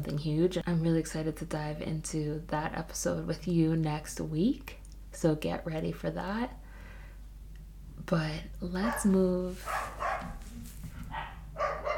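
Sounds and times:
speech: 0:00.0 - 0:06.6, 0:08.0 - 0:10.0
two dogs barking: 0:08.8 - 0:11.9.

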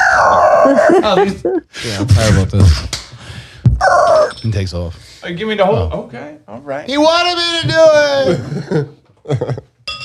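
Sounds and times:
laughter: 0:00.6 - 0:02.8, 0:07.8 - 0:09.8
speech: 0:00.8 - 0:03.0, 0:04.4 - 0:09.7
glasses clinking together: 0:04.2 - 0:04.6, 0:09.8 - 0:10.0.

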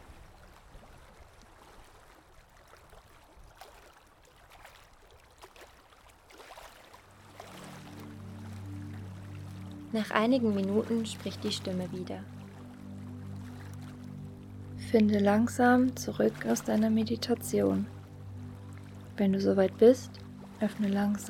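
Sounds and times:
ocean waves: 0:00.0 - 0:21.2
low steady hum: 0:07.0 - 0:21.2
speech: 0:09.9 - 0:12.4, 0:14.9 - 0:18.0, 0:19.2 - 0:21.2.

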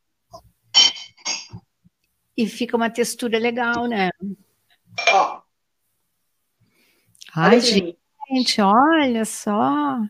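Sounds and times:
glass cup being picked up and clinking: 0:00.8 - 0:01.5
speech: 0:02.4 - 0:04.4, 0:07.4 - 0:10.0.

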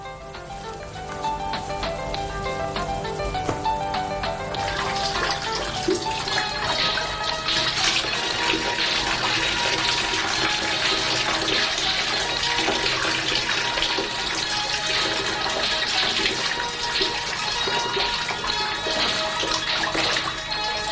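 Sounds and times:
shower water hissing and splashing: 0:00.0 - 0:20.9.

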